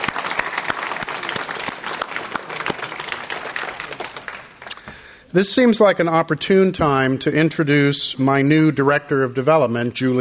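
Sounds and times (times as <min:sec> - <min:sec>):
crowd applauding event staff: 0:00.0 - 0:04.9
speech: 0:05.3 - 0:10.2.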